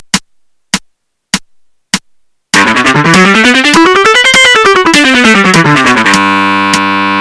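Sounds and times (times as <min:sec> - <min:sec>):
guitar playing a legato exercise: 0:02.6 - 0:07.1.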